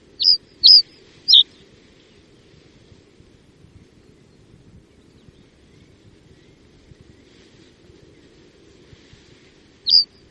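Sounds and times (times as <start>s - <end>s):
common reed bunting calling: 0.2s - 1.5s, 9.9s - 10.2s.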